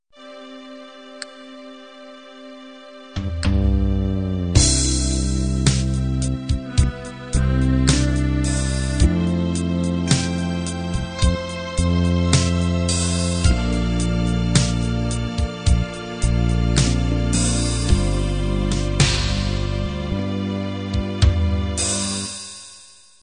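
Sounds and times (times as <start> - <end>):
halftime ballad intro: 0.4 - 22.4.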